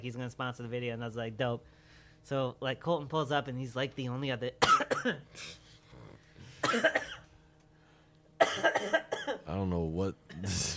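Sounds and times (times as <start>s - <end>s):
speech: 0.0s - 5.6s, 6.7s - 7.1s, 8.6s - 10.7s
harsh hacking coughs in a coughing fit: 4.6s - 5.6s, 6.4s - 7.3s, 8.4s - 9.5s.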